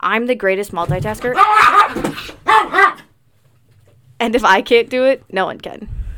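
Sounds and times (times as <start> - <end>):
speech: 0.0 - 3.0, 4.2 - 6.0
small dog barking in an office: 1.4 - 3.1.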